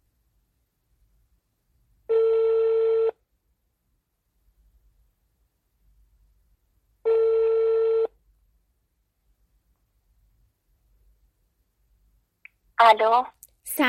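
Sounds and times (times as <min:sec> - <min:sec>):
telephone ringback tones of an outgoing call: 0:02.1 - 0:03.2, 0:07.1 - 0:08.2
speech: 0:12.8 - 0:13.8.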